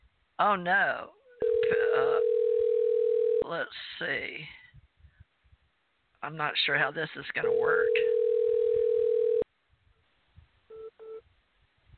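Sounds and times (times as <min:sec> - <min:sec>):
speech: 0:00.4 - 0:02.3, 0:03.5 - 0:04.6, 0:06.2 - 0:08.1
telephone ringing: 0:01.4 - 0:03.4, 0:07.4 - 0:09.4.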